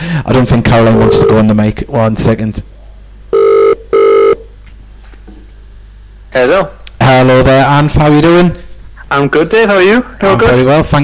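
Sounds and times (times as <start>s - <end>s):
speech: 0.2s - 2.7s, 6.3s - 11.0s
telephone ringback tone on an outgoing phone call: 0.8s - 1.5s, 3.3s - 4.4s.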